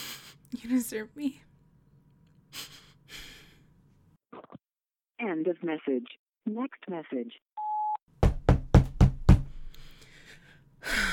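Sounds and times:
speech: 0.6 - 1.5, 5.2 - 7.5
firm loud knocks on a door: 8.2 - 9.6.

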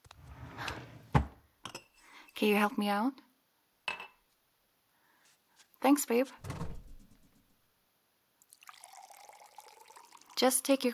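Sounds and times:
speech: 2.4 - 3.3, 5.9 - 6.6, 10.4 - 10.9
water pouring into a container: 8.5 - 10.8.

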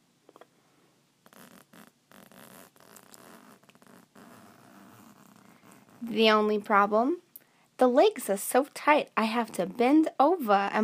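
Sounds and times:
clothing zipper pulled down: 1.2 - 6.1
speech: 6.0 - 7.2, 7.8 - 10.8.

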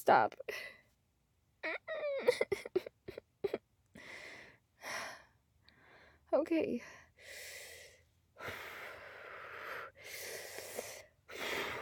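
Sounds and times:
speech: 0.0 - 0.8, 1.6 - 2.9, 6.3 - 7.6
deep breaths: 3.9 - 11.8.

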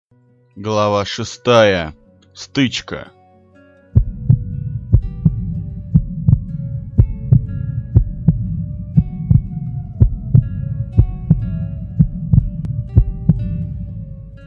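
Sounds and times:
speech: 0.6 - 3.2
heartbeat thumping: 4.0 - 14.2
low droning hum: 4.0 - 14.4.

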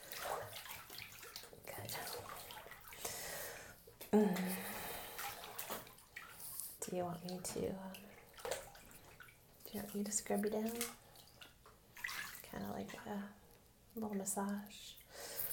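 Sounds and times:
water splashing and sloshing in a bathtub: 0.0 - 3.2, 4.2 - 13.0
water running steadily into a bathtub: 0.0 - 15.5
speech: 4.1 - 4.6, 6.9 - 8.1, 9.7 - 11.0, 12.6 - 13.4, 14.0 - 15.0.

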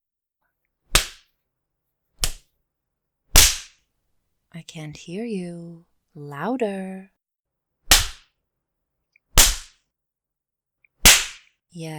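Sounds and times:
sharp loud spanking whacks: 1.0 - 1.2, 3.4 - 3.7, 7.9 - 8.2, 9.4 - 9.7, 11.1 - 11.4
speech: 4.6 - 7.2, 11.8 - 11.9.

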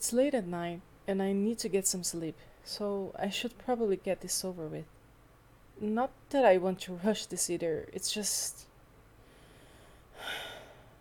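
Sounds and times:
speech: 0.0 - 5.0, 5.8 - 8.7
single deep breath taken while trying to calm down: 9.2 - 10.9.

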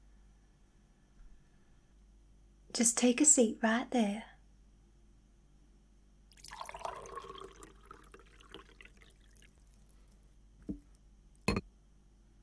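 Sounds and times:
speech: 2.8 - 4.3
coffee pouring from a pot into a cup: 6.3 - 10.0.

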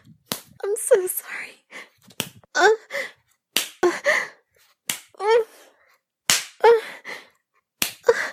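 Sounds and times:
hand slapping a bare buttock: 0.2 - 0.6, 2.0 - 2.5, 3.5 - 3.9, 4.8 - 5.2, 6.3 - 6.6, 7.8 - 8.2
speech: 0.8 - 1.8.

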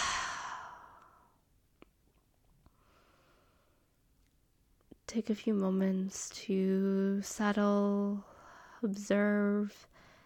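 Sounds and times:
deep sighing exhale during a guided meditation breathing exercise: 0.0 - 1.2
speech: 5.1 - 10.0.

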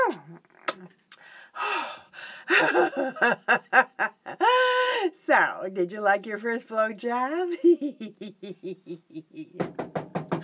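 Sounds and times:
laughter: 2.5 - 4.7, 7.5 - 9.6
speech: 2.6 - 3.9, 5.6 - 10.0
knocking on a door: 9.6 - 10.4.

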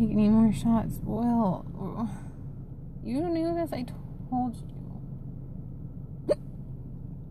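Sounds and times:
speech: 0.0 - 2.3, 3.0 - 4.8
sharp abrupt painful hiccups: 6.3 - 6.5.

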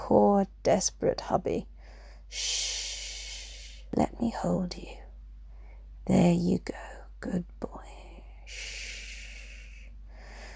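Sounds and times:
speech: 0.1 - 1.7, 2.3 - 2.9, 3.9 - 5.0, 6.1 - 8.8
heavy breathing: 1.8 - 3.9, 8.4 - 10.5.

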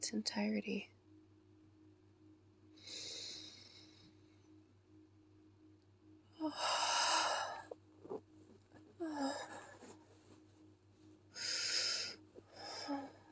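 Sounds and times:
deep breath in and slow breath out: 2.8 - 4.2, 6.4 - 8.2, 9.0 - 10.1, 11.3 - 13.3.

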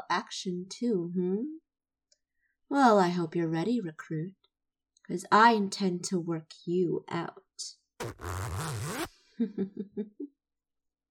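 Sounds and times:
speech: 0.1 - 1.6, 2.7 - 4.4, 5.1 - 10.4
small zipper on armor opening: 8.0 - 9.1.

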